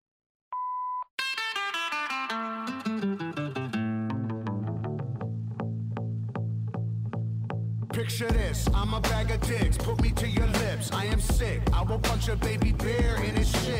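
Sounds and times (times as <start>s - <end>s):
voicemail beep: 0.6s - 1.1s
music with bright layered plucked notes and a pulsing beat: 1.2s - 13.7s
speech: 8.0s - 13.7s.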